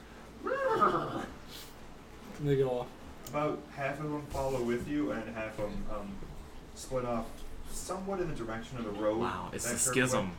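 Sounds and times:
person imitating a leader horse's neigh: 0:00.4 - 0:01.4
speech: 0:02.4 - 0:10.3.

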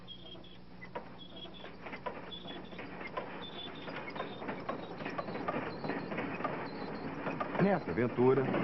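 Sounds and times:
video game train mechanical rumble and rattle: 0:00.0 - 0:08.6
video game train sharp clacks and clicks: 0:00.3 - 0:08.6
speech: 0:07.6 - 0:08.6.

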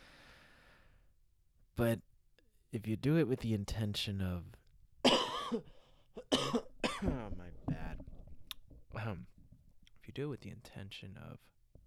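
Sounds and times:
speech: 0:01.8 - 0:02.1, 0:02.7 - 0:04.6, 0:05.5 - 0:06.3, 0:09.0 - 0:09.3, 0:10.1 - 0:11.5
harsh throaty coughs: 0:05.0 - 0:07.3.

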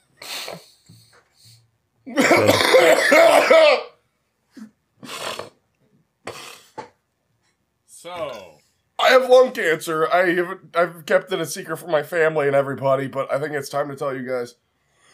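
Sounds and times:
speech: 0:02.1 - 0:03.9, 0:09.3 - 0:14.6
person coughing: 0:02.1 - 0:04.0.

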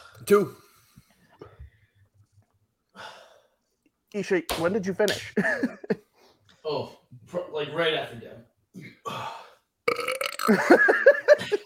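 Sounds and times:
speech: 0:00.2 - 0:00.6, 0:04.1 - 0:06.0, 0:06.6 - 0:11.6
longer croaky belch wavering in pitch: 0:09.9 - 0:10.7
weak burp after chugging a can: 0:09.9 - 0:10.8.

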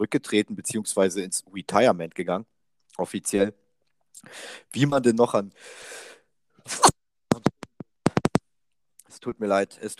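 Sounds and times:
speech: 0:00.0 - 0:03.6, 0:04.2 - 0:06.0, 0:06.6 - 0:06.9, 0:09.2 - 0:09.9
person sneezing after a breathy intake: 0:06.7 - 0:07.0.

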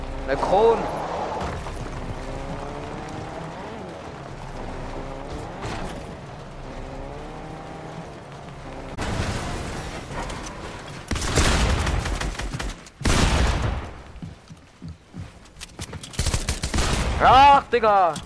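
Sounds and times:
video game car engine driven and revved: 0:00.0 - 0:18.2
speech: 0:00.3 - 0:01.0, 0:17.8 - 0:18.2.

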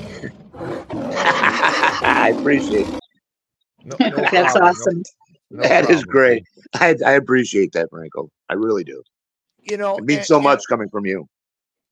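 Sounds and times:
loud rough roar: 0:00.0 - 0:03.0
speech: 0:00.2 - 0:01.0, 0:02.0 - 0:03.0, 0:03.9 - 0:11.3
laughter: 0:01.1 - 0:02.8, 0:03.9 - 0:04.9, 0:05.6 - 0:07.4.

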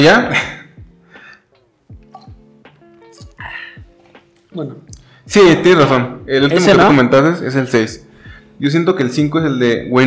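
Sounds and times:
speech: 0:00.0 - 0:00.6, 0:04.5 - 0:10.0
person drinking water with wet gulps and swallows: 0:02.0 - 0:02.4.

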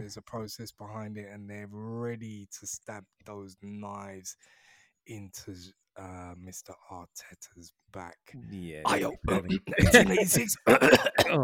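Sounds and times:
speech: 0:00.0 - 0:11.4
laughter: 0:08.9 - 0:11.4
person coughing: 0:08.9 - 0:11.4
throat clearing: 0:08.9 - 0:11.4.

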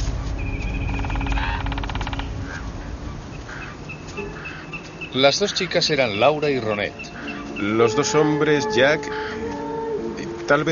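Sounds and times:
bird chirps in a forest: 0:00.1 - 0:08.2
rapid rattling call in a forest: 0:00.4 - 0:08.4
speech: 0:05.2 - 0:09.3, 0:10.5 - 0:10.7.

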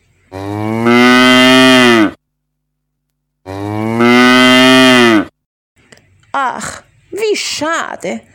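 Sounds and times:
cow mooing: 0:00.3 - 0:02.2, 0:03.4 - 0:05.3
speech: 0:06.4 - 0:08.3.

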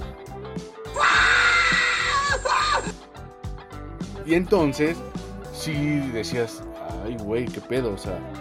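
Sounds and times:
loud shrill frightful scream: 0:00.9 - 0:03.0
speech: 0:04.3 - 0:08.3.

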